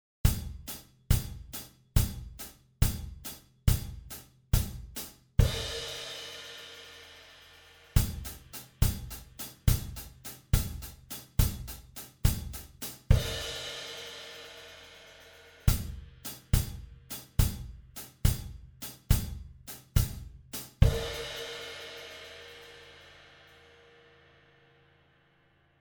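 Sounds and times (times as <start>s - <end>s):
drum shuffle: 0.3s - 6.4s, 8.0s - 14.4s, 15.7s - 21.9s.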